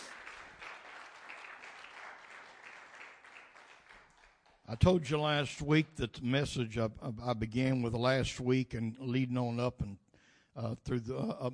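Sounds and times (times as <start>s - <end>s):
audience applause: 0.0s - 4.6s
speech: 4.7s - 10.0s, 10.6s - 11.5s.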